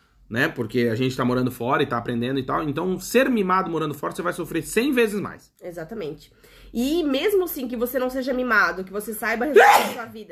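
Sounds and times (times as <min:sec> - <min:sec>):
speech: 0:00.3 - 0:10.3
single sharp sneeze: 0:09.5 - 0:10.1.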